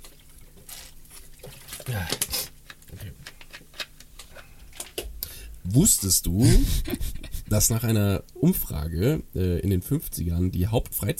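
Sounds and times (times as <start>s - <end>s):
water being poured or sipped: 0.0s - 2.2s
faint splashy bursts of water: 0.0s - 2.3s
speech: 1.9s - 2.4s, 5.7s - 11.1s
laughter: 6.4s - 7.6s.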